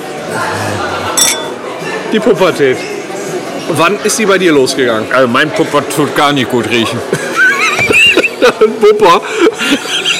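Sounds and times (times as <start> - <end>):
low murmur of chatter: 0.0 - 10.1
glasses clinking in a toast: 1.2 - 1.6
speech: 2.1 - 3.0, 3.7 - 7.4, 8.4 - 10.1
laughter: 6.8 - 10.1.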